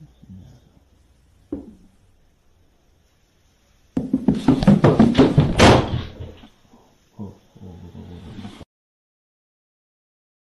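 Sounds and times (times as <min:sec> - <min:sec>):
rapid clattering thuds: 0:04.0 - 0:06.5
door slamming shut: 0:04.6 - 0:06.4.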